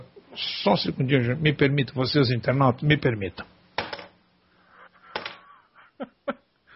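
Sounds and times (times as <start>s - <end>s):
speech: 0.4s - 3.5s
pen clattering on hard surface: 3.8s - 4.2s, 5.2s - 5.4s.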